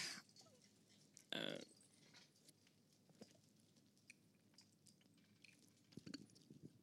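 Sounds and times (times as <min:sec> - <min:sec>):
person gulping water: 0:01.2 - 0:01.8, 0:04.1 - 0:06.8.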